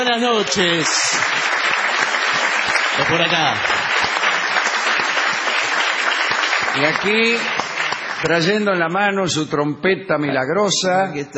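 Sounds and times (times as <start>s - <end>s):
audience ovation with many hands clapping at a live show: 0.0s - 8.7s
speech: 0.1s - 1.5s, 3.0s - 3.7s, 6.8s - 7.6s, 8.2s - 11.3s.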